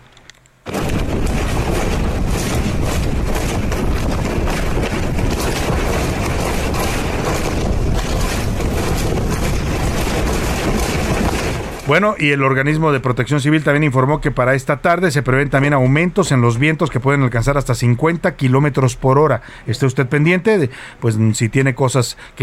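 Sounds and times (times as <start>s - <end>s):
strong wind gusts: 0.7s - 12.2s
speech: 11.9s - 22.4s.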